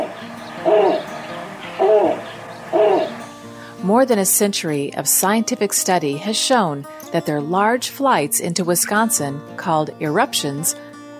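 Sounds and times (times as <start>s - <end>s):
snowy owl hooting: 0.0s - 3.3s
speech: 3.9s - 10.9s.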